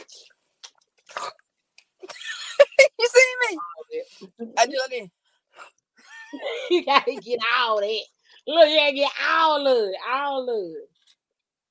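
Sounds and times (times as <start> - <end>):
wet slurping and sucking of a jello shot: 1.1 - 1.4
laughter: 2.0 - 3.4, 6.1 - 7.4
speech: 4.3 - 5.2, 6.4 - 10.9.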